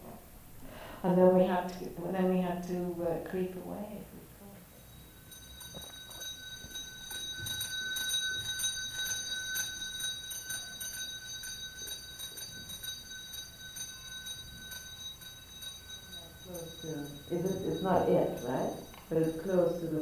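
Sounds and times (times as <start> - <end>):
speech: 1.0 - 4.3, 16.8 - 20.0
heavy hand bell shaken with clapper striking: 4.7 - 20.0.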